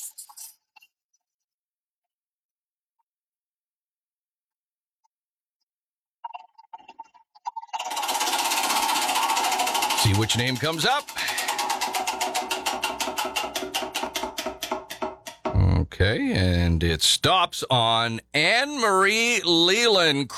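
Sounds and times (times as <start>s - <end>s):
digital prize wheel ticking clicks: 7.8s - 15.6s
speech: 10.1s - 11.3s, 15.9s - 20.3s.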